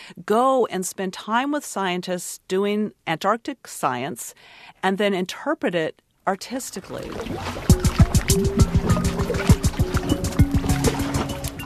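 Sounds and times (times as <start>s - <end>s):
speech: 0.1s - 8.6s
meltwater dripping from a glacier into pooled water in Antarctica: 7.1s - 11.6s.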